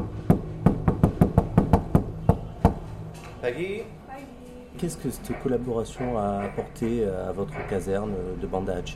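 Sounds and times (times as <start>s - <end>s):
knocking on an office door: 0.2s - 2.8s, 5.3s - 7.8s
speech: 3.4s - 8.9s.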